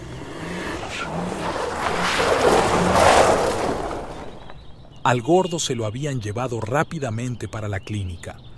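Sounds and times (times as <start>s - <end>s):
taxi engine revving and accelerating as it pulls away: 0.0s - 5.0s
tire noise: 0.0s - 5.8s
speech: 5.0s - 8.5s.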